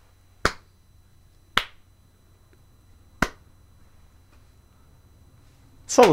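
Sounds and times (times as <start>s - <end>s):
hand claps: 0.4s - 0.7s, 1.5s - 1.8s, 3.2s - 3.4s
speech: 5.9s - 6.1s.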